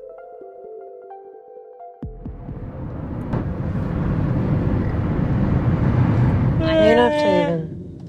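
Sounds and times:
low rumble of congested traffic: 0:02.3 - 0:08.0
car horns honking in a traffic jam: 0:06.4 - 0:07.8.

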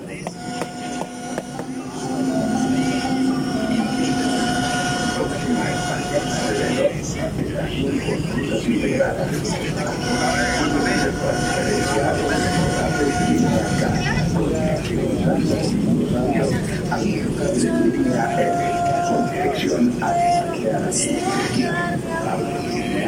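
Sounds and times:
metro train running through Medellín: 0:00.0 - 0:23.0
voices: 0:00.0 - 0:23.0.

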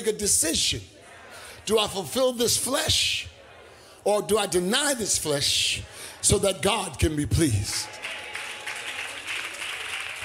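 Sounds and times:
speech: 0:00.0 - 0:01.0, 0:01.6 - 0:03.4, 0:04.0 - 0:08.0
scattered audience clapping: 0:07.5 - 0:10.2.

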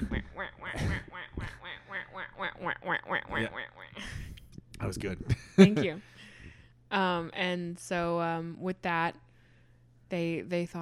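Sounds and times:
person imitating ducks quacking: 0:00.0 - 0:04.0
speech: 0:04.9 - 0:06.1, 0:06.9 - 0:09.2, 0:10.1 - 0:10.8.

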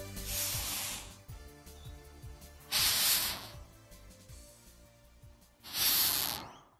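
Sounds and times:
rhinoceros beetle hissing: 0:00.0 - 0:01.4, 0:02.6 - 0:03.8, 0:05.6 - 0:06.7
faint bird chirping: 0:00.0 - 0:04.0, 0:05.6 - 0:06.7.

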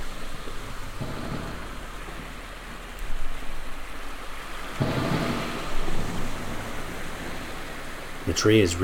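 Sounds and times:
thunder crackling and rumbling in a storm at a sandy, rocky seashore: 0:00.0 - 0:08.3
steady rainstorm at a sandy, rocky seashore: 0:00.0 - 0:08.8.

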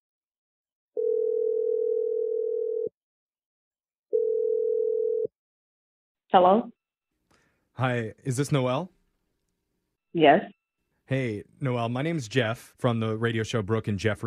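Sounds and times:
telephone dial tone: 0:01.0 - 0:02.9, 0:04.1 - 0:05.3
speech: 0:06.3 - 0:06.8, 0:07.8 - 0:08.9, 0:10.1 - 0:14.2.

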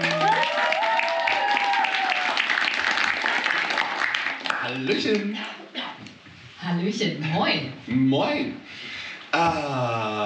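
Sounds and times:
audience applause: 0:00.0 - 0:05.2
speech: 0:06.9 - 0:10.2.

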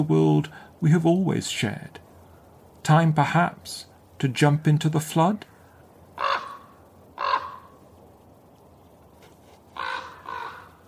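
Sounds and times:
speech: 0:00.0 - 0:02.0, 0:02.8 - 0:05.5
faint rumbling background: 0:00.0 - 0:10.8
raven croaking: 0:05.4 - 0:08.0, 0:09.7 - 0:10.8.

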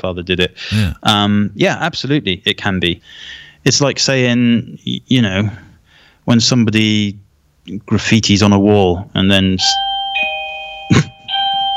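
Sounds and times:
speech: 0:00.0 - 0:05.7, 0:06.3 - 0:09.8
electronic doorbell ringing in two tones: 0:09.8 - 0:11.7.

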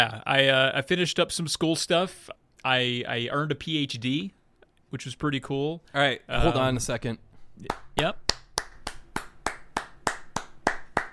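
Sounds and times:
speech: 0:00.0 - 0:08.3
sharp hand claps: 0:07.6 - 0:11.1.

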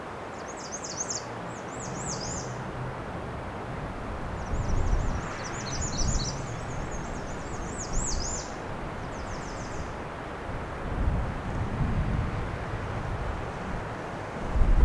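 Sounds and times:
American redstart singing along the shoreline of Lake Huron: 0:00.4 - 0:02.6, 0:04.4 - 0:10.0
constant low roar: 0:01.3 - 0:14.8.

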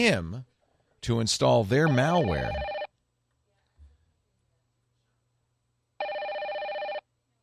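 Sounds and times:
speech: 0:00.0 - 0:00.4, 0:01.0 - 0:02.7
faint hum: 0:00.0 - 0:07.4
telephone ringing on recorded phone call: 0:01.8 - 0:02.9, 0:06.0 - 0:07.0.

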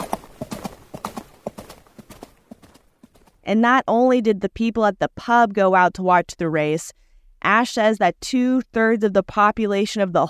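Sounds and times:
horse hooves clip-clopping: 0:00.0 - 0:03.4
speech: 0:03.5 - 0:10.2.

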